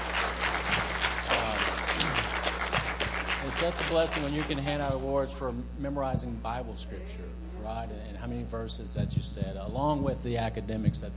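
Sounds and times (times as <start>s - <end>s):
crowd applauding: 0.0s - 5.2s
speech: 3.6s - 11.1s.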